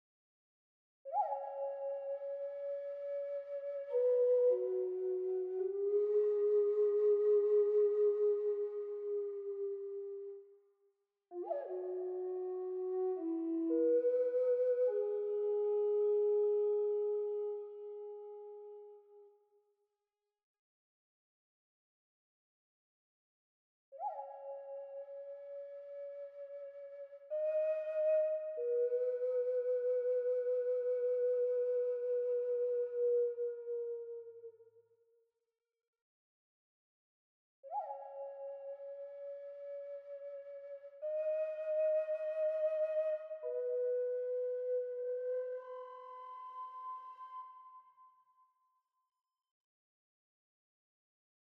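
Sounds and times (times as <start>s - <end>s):
Aztec flute music: 1.1s - 10.6s, 11.3s - 19.4s, 24.0s - 34.7s, 37.6s - 48.6s.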